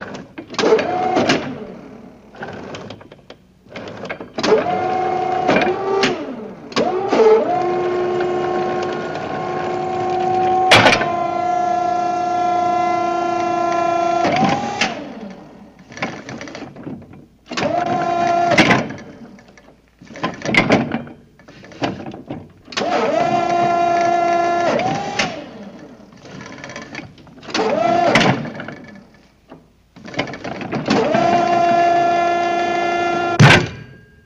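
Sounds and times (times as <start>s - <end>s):
forklift: 0.0s - 34.2s.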